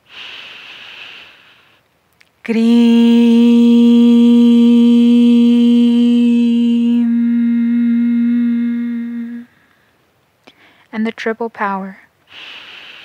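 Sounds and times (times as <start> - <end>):
deep breathy inhale: 0.0 - 1.8, 7.0 - 10.9, 12.3 - 13.0
speech: 2.4 - 3.2, 11.0 - 12.6
steady intoned vocal tone in a meditative chanting exercise: 2.4 - 9.6.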